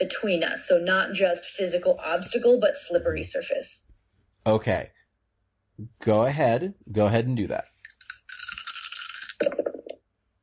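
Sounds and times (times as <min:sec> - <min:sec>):
speech: 0:00.1 - 0:05.0, 0:05.8 - 0:07.7
small dice clattering across a hard tabletop: 0:07.8 - 0:10.0.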